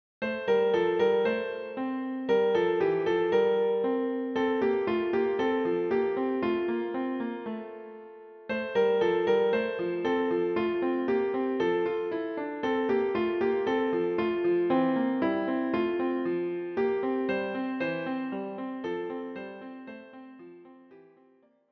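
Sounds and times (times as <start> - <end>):
Christmas song for piano with prelude: 0.2 - 21.5.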